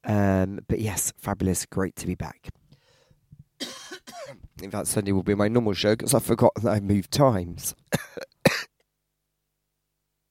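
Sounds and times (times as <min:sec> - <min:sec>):
speech: 0:00.1 - 0:02.6, 0:03.6 - 0:08.3
person coughing: 0:03.6 - 0:04.5, 0:07.9 - 0:08.7.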